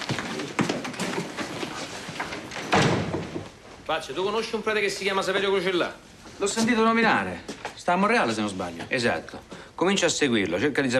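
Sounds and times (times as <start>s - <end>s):
faint noise: 0.0s - 10.9s
office door being shut: 2.6s - 3.6s
speech: 3.9s - 10.9s.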